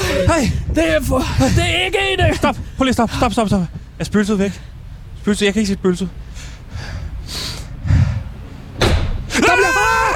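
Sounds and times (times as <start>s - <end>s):
dull low thump: 0.0s - 4.2s, 7.9s - 9.3s
hollow rumble: 0.0s - 10.1s
speech: 0.3s - 6.2s
door slamming shut: 8.8s - 9.2s.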